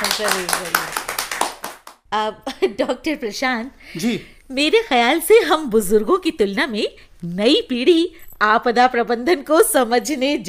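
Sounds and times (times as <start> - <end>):
audience applause: 0.0 - 2.0
speech: 0.2 - 1.0, 2.1 - 10.4.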